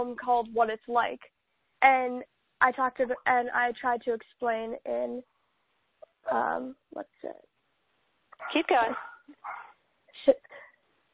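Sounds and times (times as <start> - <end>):
speech: 0.0 - 5.3, 6.2 - 7.5, 8.4 - 9.6
dog giving a short yip bark: 8.4 - 9.8.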